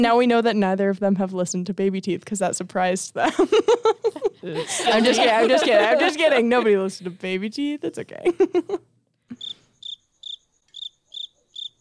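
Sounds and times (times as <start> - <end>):
speech: 0.0 - 9.4
laughter: 3.2 - 7.0, 8.2 - 8.9
crickets chirping sound effect: 9.4 - 11.7.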